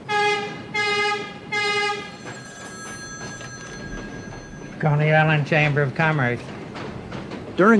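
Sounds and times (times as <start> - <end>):
train horn blasts: 0.0 - 2.5
speech: 4.8 - 6.6, 7.6 - 7.7.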